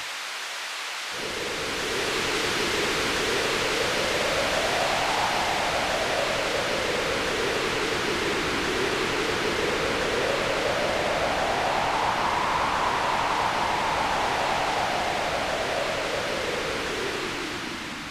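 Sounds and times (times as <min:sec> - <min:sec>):
synthetic rain hiss: 0:00.0 - 0:18.0.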